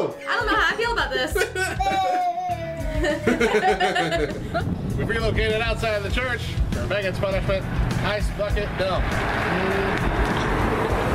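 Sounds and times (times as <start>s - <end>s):
laughter: 0.3s - 4.7s, 11.0s - 11.1s
speech: 3.0s - 10.4s
car driving past with engine and tire rush: 6.5s - 11.1s.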